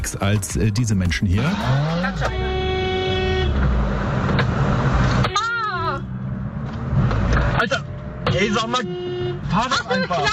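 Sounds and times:
speech: 0.1 - 2.4, 8.4 - 10.3
constant rumble of engines in road traffic: 1.0 - 10.3
car horns honking from agitated drivers in busy road traffic: 1.1 - 4.0, 5.0 - 6.3, 7.4 - 10.3.

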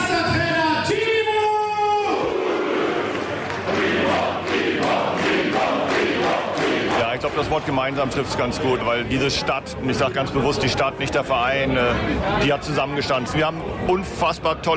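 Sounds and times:
euphoric football fans cheering and chanting: 0.2 - 8.7
speech: 7.5 - 14.7.

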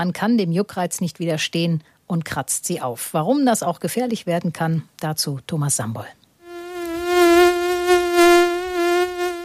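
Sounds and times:
speech: 0.0 - 6.2
mosquito whining in flight: 6.4 - 9.4.

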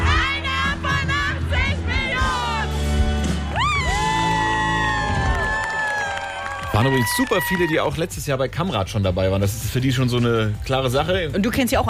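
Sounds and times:
large concert crowd cheering and shouting: 0.0 - 8.1
speech: 6.8 - 11.8.

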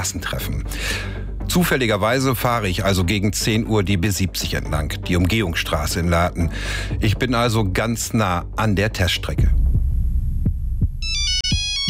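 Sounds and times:
speech: 0.0 - 9.5
low thumping beats: 9.4 - 11.8
mobile phone electronic ringtone: 11.0 - 11.8.

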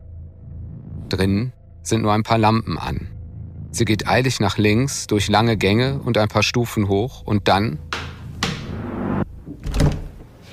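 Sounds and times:
speech: 1.1 - 3.1, 3.7 - 8.0
heavy security door clunk: 8.0 - 8.8, 9.4 - 10.3.

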